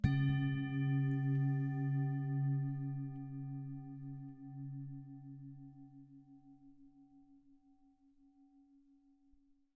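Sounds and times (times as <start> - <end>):
singing bowl: 0.0 - 9.4.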